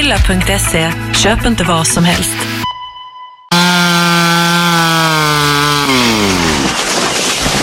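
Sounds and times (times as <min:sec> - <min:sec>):
speech: 0:00.1 - 0:02.6
chainsaw cutting through wood: 0:03.5 - 0:07.2.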